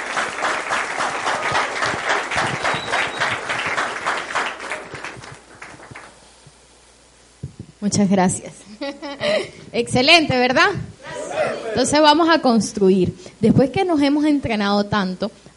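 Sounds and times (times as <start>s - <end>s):
room full of people applauding: 0.0s - 6.2s
speech: 7.8s - 8.6s, 9.8s - 10.9s, 11.8s - 15.5s.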